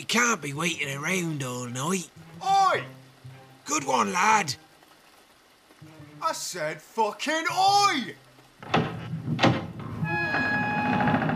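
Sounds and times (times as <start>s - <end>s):
speech: 0.0s - 3.0s, 3.7s - 4.6s, 6.2s - 8.8s
heavy knocks on wood: 8.6s - 9.9s
storage hut door creaking open: 8.6s - 11.3s.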